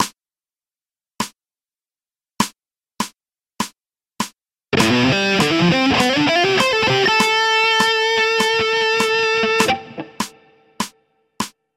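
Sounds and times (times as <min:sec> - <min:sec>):
fast electric guitar lick for finger dexterity training: 0:04.8 - 0:10.8.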